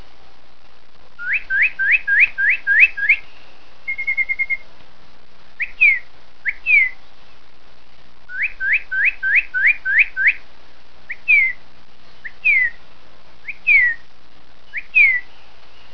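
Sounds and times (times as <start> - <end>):
bird giving sharp whistled notes and a short trill: 1.2 - 3.3, 3.9 - 4.6, 5.6 - 7.0, 8.3 - 10.4, 11.1 - 11.6, 12.2 - 12.8, 13.4 - 14.0, 14.7 - 15.9.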